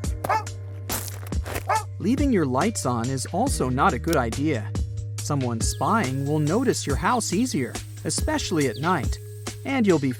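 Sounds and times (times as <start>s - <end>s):
dog barking: 0.3s - 0.5s, 1.7s - 1.9s
speech: 2.0s - 10.1s.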